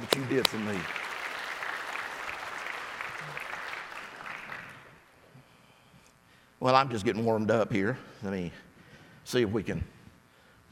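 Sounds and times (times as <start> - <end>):
audience applause: 0.0 - 4.9
speech: 0.2 - 1.0, 6.6 - 8.7, 9.3 - 10.0.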